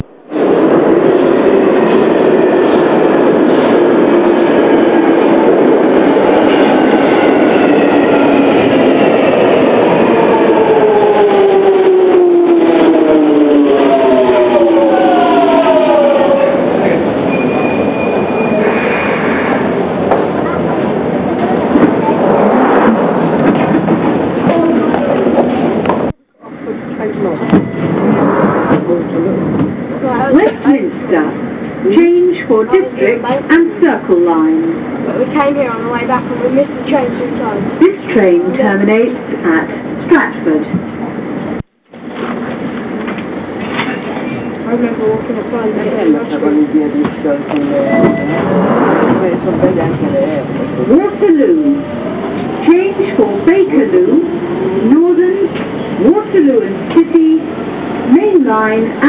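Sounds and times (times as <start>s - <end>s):
underground train: 0.0s - 59.0s.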